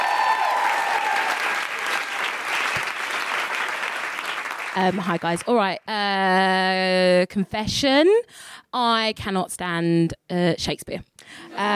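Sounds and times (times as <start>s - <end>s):
faint whoop or cheer: 0.0s - 1.7s
crowd applauding: 0.0s - 5.8s
speech: 4.8s - 11.7s.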